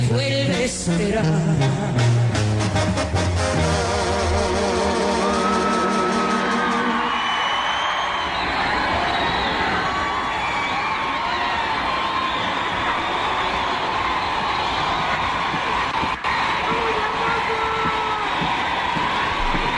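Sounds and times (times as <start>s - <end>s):
speech: 0.1s - 2.0s
large concert crowd screaming, whooping and cheering: 2.3s - 19.7s
concert crowd applauding: 5.2s - 19.7s.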